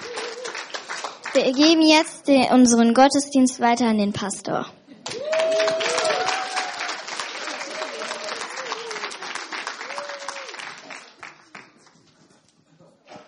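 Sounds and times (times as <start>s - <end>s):
cheers: 0.0s - 0.9s, 5.0s - 11.2s
crowd applauding loudly: 0.0s - 1.8s, 5.0s - 12.0s
speech: 1.3s - 4.8s.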